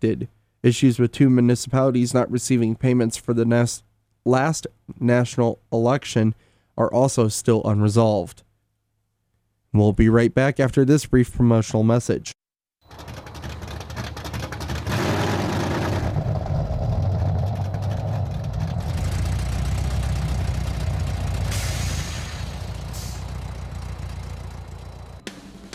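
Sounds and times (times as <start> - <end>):
speech: 0.0 - 8.5, 9.7 - 13.2
1990 Chevy Corvette 350 small block engine idling: 12.9 - 25.7.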